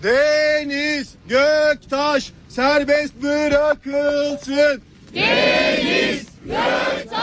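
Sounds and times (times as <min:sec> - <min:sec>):
speech: 0:00.0 - 0:07.2
protesters chanting outside a courthouse in the rain: 0:05.2 - 0:07.2.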